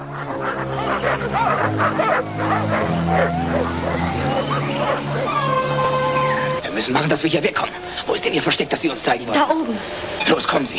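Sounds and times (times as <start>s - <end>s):
several dogs barking and yelping excitedly: 0.0s - 7.1s
speech: 1.0s - 5.2s, 6.8s - 10.7s.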